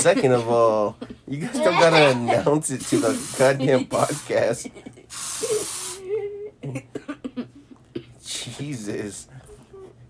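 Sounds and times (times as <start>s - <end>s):
speech: 0.0s - 5.5s, 8.6s - 9.4s
aerosol spray hissing: 2.8s - 4.4s, 5.1s - 6.0s.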